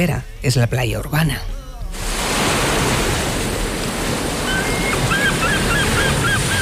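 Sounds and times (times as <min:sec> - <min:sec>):
speech: 0:00.0 - 0:01.6
ocean surf washing onto a beach: 0:01.7 - 0:06.5.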